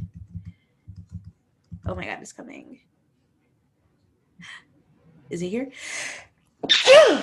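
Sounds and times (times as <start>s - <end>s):
speech: 1.9s - 2.9s, 5.3s - 7.2s
loud sneeze: 6.6s - 7.2s.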